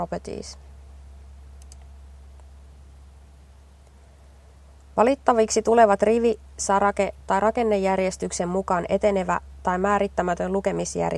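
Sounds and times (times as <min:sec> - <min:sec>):
speech: 0:00.0 - 0:00.7, 0:05.0 - 0:11.1
steady low hum: 0:00.0 - 0:11.1
computer mouse clicking: 0:01.6 - 0:02.5.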